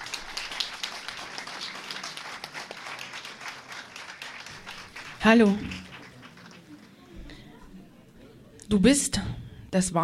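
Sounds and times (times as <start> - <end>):
audience applause: 0.0 - 7.2
speech: 5.2 - 5.8, 8.7 - 10.0.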